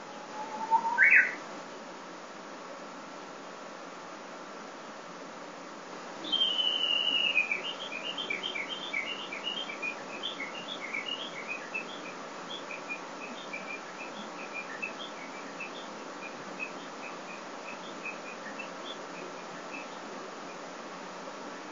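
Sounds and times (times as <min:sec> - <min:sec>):
Japanese bush warbler whistling and chirping: 0:00.0 - 0:01.4, 0:06.2 - 0:21.6.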